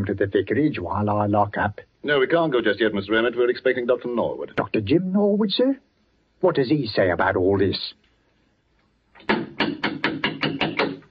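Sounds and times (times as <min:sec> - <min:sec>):
speech: 0:00.0 - 0:08.0
knocking on a church vestry door: 0:09.2 - 0:11.0.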